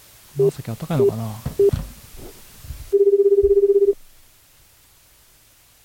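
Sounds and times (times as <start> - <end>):
speech: 0.4 - 1.8
telephone ringback tones while placing a call: 1.0 - 1.8, 2.9 - 4.0.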